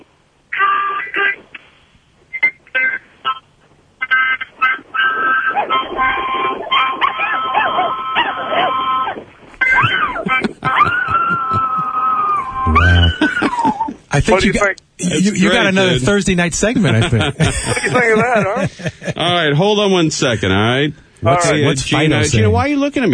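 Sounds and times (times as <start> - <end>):
harmonica playing bright reedy chords: 2.4 - 7.0, 12.4 - 13.4
dog howling along to harmonica: 5.0 - 13.6
laughter: 9.7 - 14.0, 16.6 - 19.6
speech: 14.2 - 23.1.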